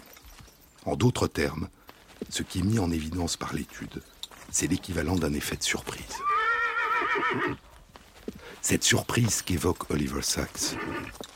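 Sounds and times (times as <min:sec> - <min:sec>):
hoof clops on hard ground: 0:00.0 - 0:11.3
speech: 0:00.8 - 0:06.3, 0:07.2 - 0:11.3
horse whinnying: 0:06.1 - 0:07.6, 0:10.5 - 0:11.3.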